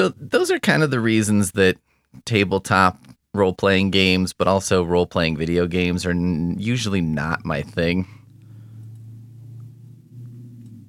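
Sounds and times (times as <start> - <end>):
speech: 0.0 - 8.2
heavy low rumble of traffic with cars passing: 4.3 - 10.8.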